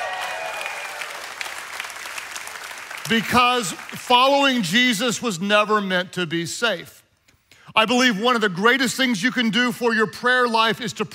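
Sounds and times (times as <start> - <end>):
whistles and cheers: 0.0 - 1.5
audience applause: 0.0 - 4.6
speech: 3.1 - 7.0, 7.8 - 11.1.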